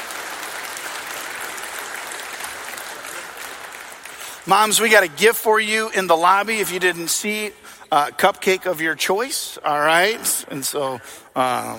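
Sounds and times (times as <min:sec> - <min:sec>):
large crowd applauding: 0:00.0 - 0:05.3
speech: 0:04.4 - 0:11.7.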